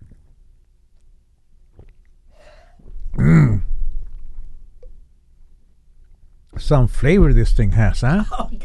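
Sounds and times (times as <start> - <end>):
loud deep burp after drinking: 3.1 - 3.7
speech: 6.7 - 8.6.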